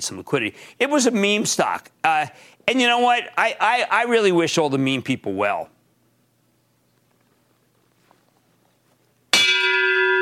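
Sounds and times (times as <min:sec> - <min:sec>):
speech: 0:00.0 - 0:05.8
single loud church bell strike: 0:09.3 - 0:10.2.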